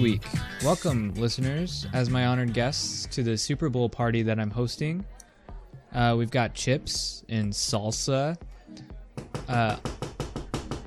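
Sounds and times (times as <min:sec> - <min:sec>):
speech: 0:00.0 - 0:05.2, 0:05.9 - 0:09.9
knocking on a house door: 0:09.2 - 0:10.8.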